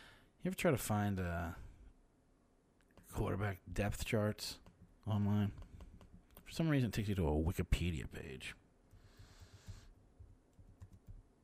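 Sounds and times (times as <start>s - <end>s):
speech: 0.4s - 1.6s, 3.1s - 5.7s, 6.5s - 8.6s
typing on a computer keyboard: 10.2s - 11.2s.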